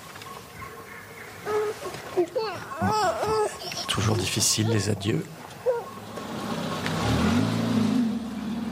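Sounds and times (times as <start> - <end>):
speech: 2.2 - 3.4, 4.0 - 5.4
car engine revving as the car pulls away: 6.0 - 8.7.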